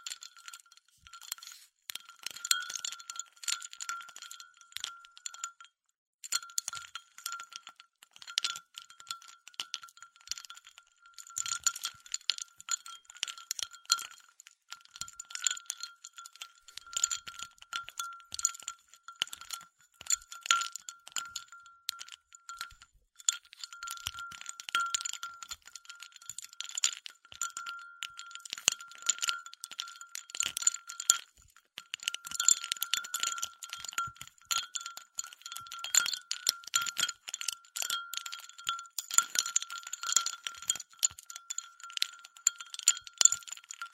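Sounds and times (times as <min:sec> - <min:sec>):
ice cubes clinking and rattling against glass: 0:00.0 - 0:43.9.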